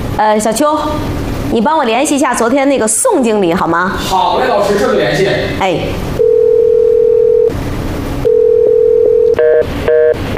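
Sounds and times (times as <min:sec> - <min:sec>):
speech: 0:00.2 - 0:06.2
telephone busy signal: 0:06.2 - 0:07.5, 0:08.2 - 0:10.3.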